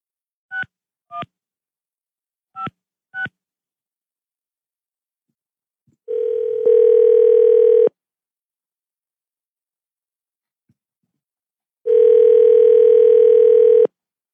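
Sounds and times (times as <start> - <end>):
phone ring-back tones: 6.1 - 7.9, 11.9 - 13.9.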